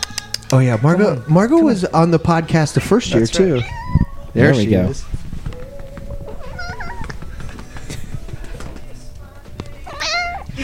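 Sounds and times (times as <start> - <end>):
speech: 0.5 - 5.2
low thumps: 2.9 - 10.6
cat meowing: 3.3 - 4.6, 5.5 - 7.3, 9.8 - 10.5
rustling noise: 5.0 - 9.0.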